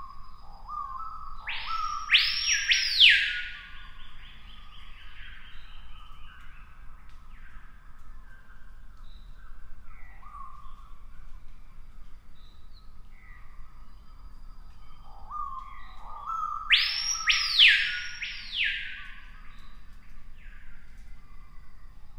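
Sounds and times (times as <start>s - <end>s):
Screaming piha soft notes and quiet calls: 0.0s - 6.4s, 14.8s - 21.5s
Screaming piha loud ringing whistled sweep: 1.4s - 3.7s, 16.5s - 19.2s.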